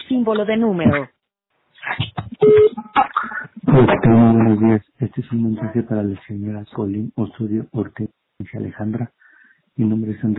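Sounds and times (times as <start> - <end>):
clipped voice fragments: 0.0 - 1.1, 1.8 - 9.1
speech: 0.1 - 1.2, 1.9 - 3.0, 3.6 - 9.2, 9.8 - 10.3
phone voicemail recording beep: 2.4 - 3.0.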